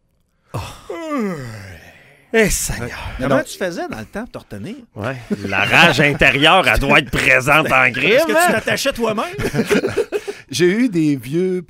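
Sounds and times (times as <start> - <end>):
voice imitating a loud drawn-out yawn of a man in a courtroom: 0.4 - 2.4
speech: 0.9 - 1.6, 2.3 - 11.6
laughter: 5.1 - 10.5.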